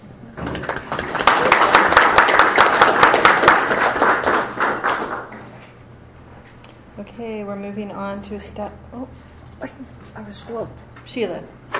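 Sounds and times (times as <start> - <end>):
crowd applauding: 0.4 - 5.6
speech: 7.2 - 11.6.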